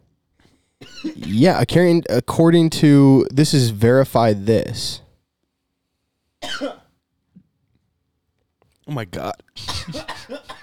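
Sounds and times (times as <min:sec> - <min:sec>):
person coughing after inhaling beer: 0:00.8 - 0:01.4, 0:06.4 - 0:06.9, 0:09.6 - 0:10.6
speech: 0:01.0 - 0:05.0, 0:08.9 - 0:10.6.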